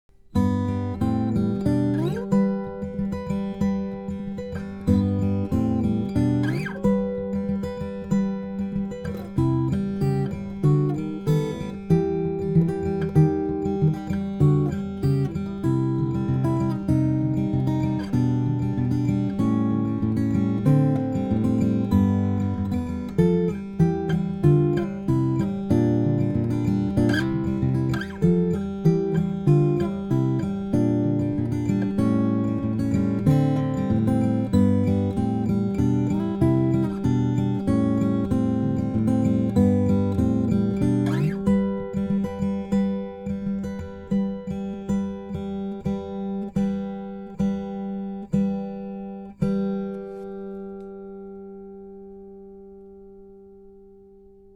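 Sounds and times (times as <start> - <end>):
guitar played with fingers: 0.1 - 54.5.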